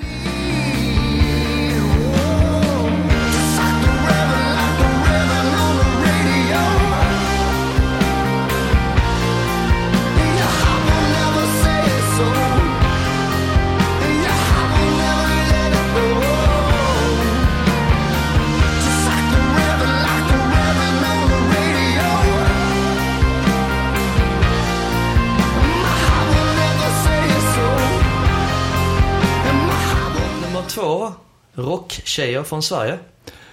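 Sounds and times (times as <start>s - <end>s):
person singing a melody in a rock song: 0.0s - 23.8s, 25.4s - 30.8s
driving drums in a full-band rock song: 0.0s - 30.7s
sustained guitars in a full-band rock song: 0.0s - 31.0s
speech: 32.2s - 33.2s.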